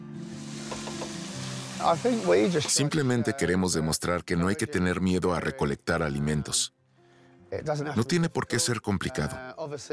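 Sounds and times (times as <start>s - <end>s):
chopped giant hogweed heads frying in a pan: 0.2s - 3.0s
speech: 1.8s - 6.8s, 7.5s - 9.9s.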